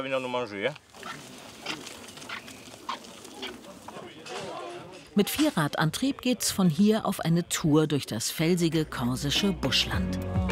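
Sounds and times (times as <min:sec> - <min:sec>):
speech: 0:00.0 - 0:01.4, 0:05.2 - 0:10.5
Corsican pigs on a farm grunting and snuffling: 0:01.0 - 0:03.9
murmur of visitors: 0:03.2 - 0:08.9.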